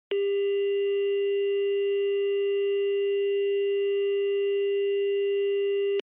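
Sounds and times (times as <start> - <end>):
telephone signal dial tone: 0.1 - 6.0.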